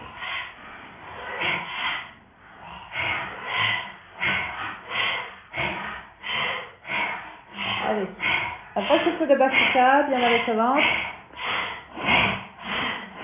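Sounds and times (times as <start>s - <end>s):
forceful breaths drawn through the mouth during a guided breathing exercise: 0.0s - 13.2s
speech: 9.3s - 11.1s.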